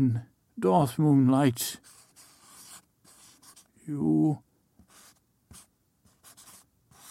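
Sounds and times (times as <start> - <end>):
speech: 0.0 - 2.0, 3.9 - 4.4
pen-on-paper strokes signing a name by hand: 1.8 - 3.7, 4.8 - 7.0.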